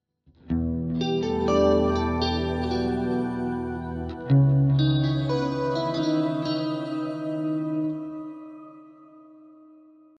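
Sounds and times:
clean shimmer tone: 1.3 - 9.0.

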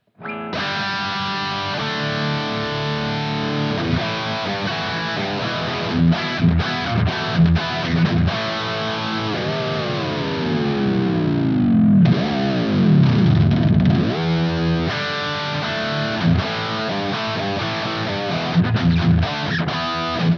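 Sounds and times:
MUSIC MAN L3 lead chords in first position: 0.0 - 20.3.

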